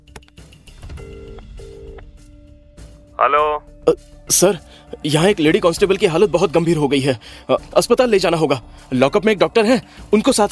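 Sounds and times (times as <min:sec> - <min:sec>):
phone line ringing tone: 0:01.0 - 0:02.0
speech: 0:03.2 - 0:10.4.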